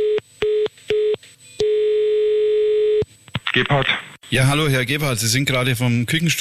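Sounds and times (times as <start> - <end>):
telephone line tone beeping then continuous: 0.0 - 3.0
speech: 3.6 - 6.3.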